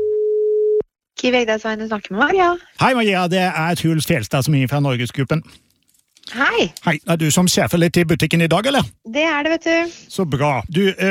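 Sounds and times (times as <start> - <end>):
telephone ringing tone while placing a call: 0.0 - 0.8
speech: 1.2 - 5.6, 6.3 - 11.0.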